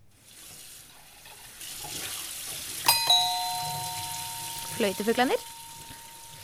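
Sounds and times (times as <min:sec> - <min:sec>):
tap water running into a sink while washing dishes: 0:00.2 - 0:02.9
two-note doorbell chime: 0:02.9 - 0:06.4
speech: 0:04.8 - 0:05.5.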